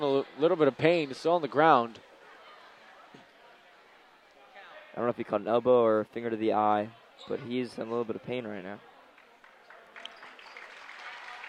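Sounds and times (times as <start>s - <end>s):
speech: 0.0s - 2.1s, 5.0s - 8.9s
crowd applauding injured player: 9.1s - 11.4s.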